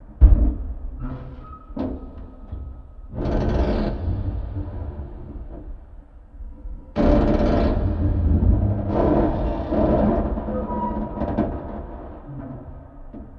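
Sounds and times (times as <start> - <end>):
ship creaking: 0.1 - 13.3
spaceship ambience: 2.8 - 12.9.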